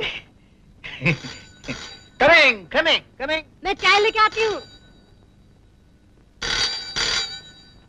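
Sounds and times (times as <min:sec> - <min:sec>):
telephone ringing: 0:01.0 - 0:02.6, 0:03.6 - 0:07.8
speech: 0:01.0 - 0:04.7.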